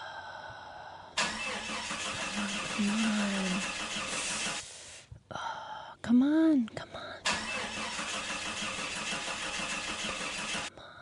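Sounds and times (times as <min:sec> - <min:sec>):
old car engine cranking and failing to start: 0:01.2 - 0:04.9, 0:07.2 - 0:10.7.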